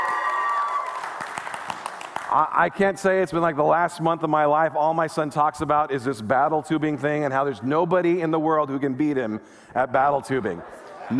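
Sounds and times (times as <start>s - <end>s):
studio audience clapping: 0.0s - 2.8s
speech: 2.3s - 11.1s.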